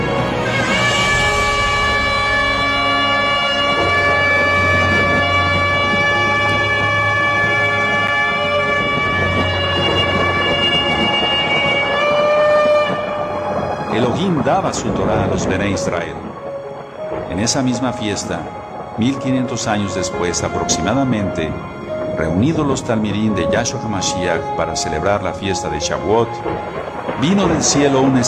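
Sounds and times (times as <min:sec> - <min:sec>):
loud sustained shofar blast: 0:00.0 - 0:14.4
deep rumbling: 0:00.0 - 0:28.2
speech: 0:14.6 - 0:16.3, 0:17.4 - 0:28.2.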